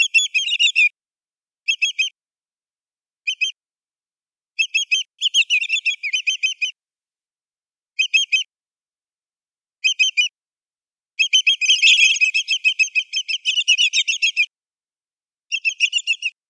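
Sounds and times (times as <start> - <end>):
greater yellowlegs giving whistled calls: 0.0 - 1.0, 1.7 - 2.2, 3.2 - 3.6, 4.6 - 6.8, 8.0 - 8.5, 9.8 - 10.4, 11.2 - 14.5, 15.5 - 16.4.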